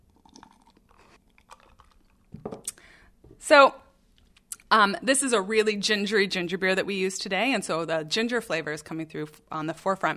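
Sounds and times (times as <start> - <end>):
person sipping a cocktail from a mug: 0.0 - 2.9
speech: 3.5 - 3.8, 4.7 - 10.1.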